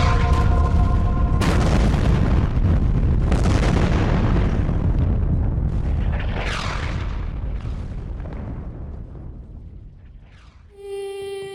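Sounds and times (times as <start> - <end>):
heavy cannon fire booming in a barrage: 0.0 - 10.7.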